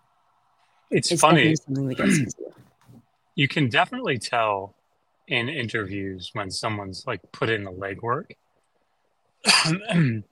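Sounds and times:
speech: 0.9s - 2.4s, 3.4s - 8.4s, 9.4s - 10.3s
person coughing: 1.9s - 2.4s, 9.4s - 10.2s.

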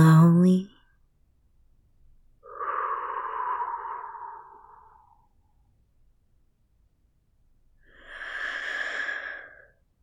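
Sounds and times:
slow guided breathing with long inhale and soft exhale: 2.4s - 5.6s, 7.8s - 9.9s.

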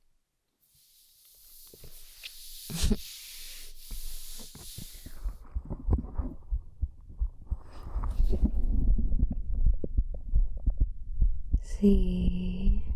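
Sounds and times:
rustling: 1.1s - 6.4s
heartbeat heard through a chest: 5.1s - 12.9s
speech: 11.8s - 12.4s.

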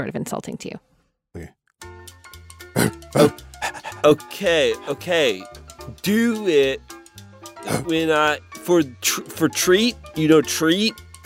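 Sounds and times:
speech: 0.0s - 1.6s, 3.1s - 7.0s, 7.6s - 11.0s
person imitating a dog being trained: 2.8s - 4.3s, 7.7s - 7.9s.

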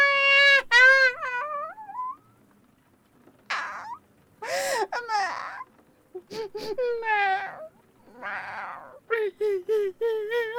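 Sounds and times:
cat wailing: 0.0s - 2.2s, 3.5s - 4.0s, 4.8s - 5.7s, 6.3s - 10.2s.

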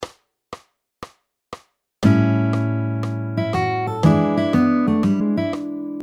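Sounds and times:
blues and R&B style lick in A: 2.0s - 6.0s.

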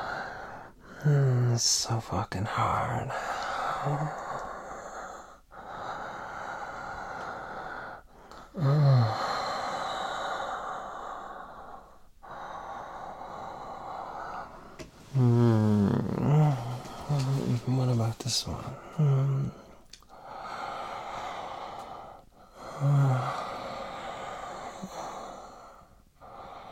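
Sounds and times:
heavy breathing: 0.0s - 1.5s, 2.6s - 26.6s
voiced moaning sighs: 0.0s - 26.6s
speech: 1.0s - 4.2s, 8.6s - 8.8s.

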